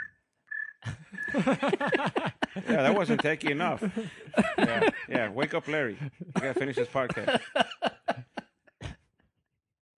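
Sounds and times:
cricket chirping: 0.0 - 1.5
laughter: 0.8 - 9.2
speech: 1.3 - 7.7.

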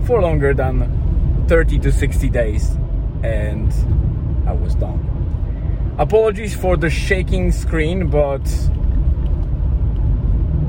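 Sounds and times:
road rumble inside a moving car: 0.0 - 10.6
speech: 0.1 - 5.2, 6.0 - 8.8.

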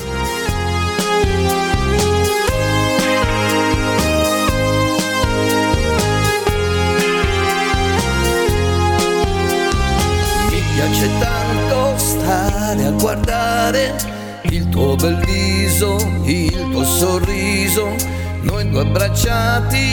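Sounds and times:
sustained melodic keyboard or string lines: 0.0 - 14.4
Italian pop song instrumental intro: 0.0 - 19.9
deep bass: 0.0 - 19.9
steady drum beat: 2.4 - 11.5
speech: 18.6 - 19.9.

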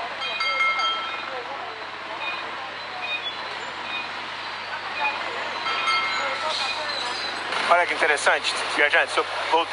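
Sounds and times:
engines rumbling in busy city street traffic: 0.0 - 9.7
brief beeps: 2.2 - 7.4
speech: 7.7 - 9.7.

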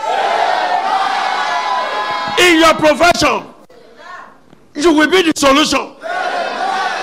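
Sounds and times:
large church audience shouting amen together: 0.0 - 2.7, 6.0 - 7.0
speech: 2.4 - 3.5, 4.8 - 6.0.

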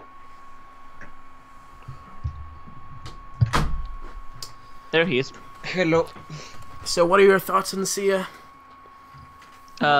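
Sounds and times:
quiet hum: 0.0 - 9.9
door opening with low thuds and rattles: 3.4 - 3.9
speech: 4.9 - 8.4, 9.8 - 9.9.

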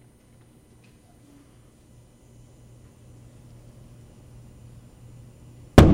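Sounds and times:
low steady hum: 0.0 - 5.9
hydrogen-filled balloon ignited with a long torch exploding: 5.8 - 5.9.

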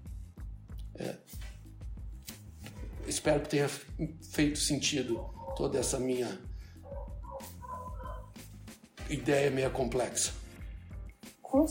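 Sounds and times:
speech: 3.1 - 6.5, 9.1 - 10.4
dog barking: 5.1 - 5.8, 6.8 - 8.3.

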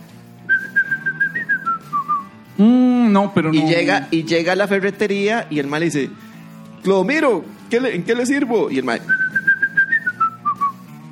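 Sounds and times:
person whistling a descending tune: 0.5 - 2.9, 9.0 - 11.0
speech: 2.6 - 9.2.

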